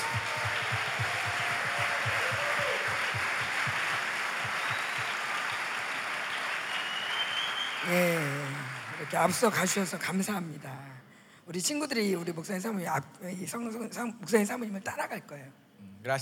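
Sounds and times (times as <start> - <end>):
faint low rhythmic thumping: 0.0 - 5.3
crowd applauding: 0.0 - 10.1
speech: 7.9 - 8.3, 9.1 - 10.9, 11.5 - 16.2.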